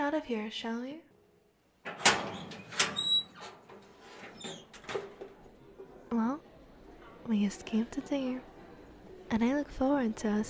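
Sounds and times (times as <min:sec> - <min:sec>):
speech: 0:00.1 - 0:01.1, 0:01.8 - 0:02.9, 0:07.3 - 0:08.5, 0:09.3 - 0:10.4
door closing: 0:01.8 - 0:05.9
hinge or latch squeak: 0:02.0 - 0:05.0.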